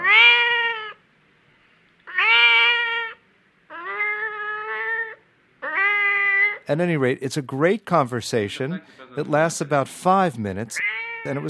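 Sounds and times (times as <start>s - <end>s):
cat meowing with long wailing cries: 0.0s - 1.0s, 2.0s - 6.6s, 10.8s - 11.4s
speech: 6.7s - 11.4s.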